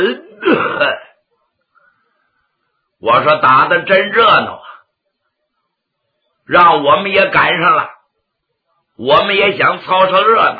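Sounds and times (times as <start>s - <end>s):
storyteller's voice performing an old swordsman's cough: 0.0s - 1.2s
speech: 3.0s - 4.7s, 6.5s - 8.0s, 9.0s - 10.5s.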